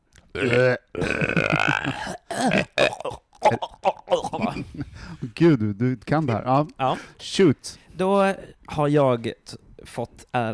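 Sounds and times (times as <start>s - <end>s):
person vocally imitating gagging and retching: 0.3s - 4.6s
speech: 0.4s - 2.0s, 5.4s - 10.5s
laughter: 3.5s - 5.2s.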